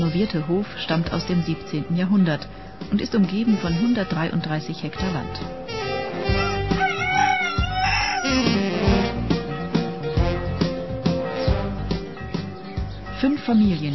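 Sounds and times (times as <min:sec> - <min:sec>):
speech: 0:00.0 - 0:06.5, 0:13.2 - 0:13.9
steady rhythmic music: 0:00.0 - 0:13.9
chickens clucking on an organic farm in Oberelvenich: 0:06.4 - 0:08.6
rooster crowing on an organic farm in Oberelvenich: 0:06.4 - 0:08.6.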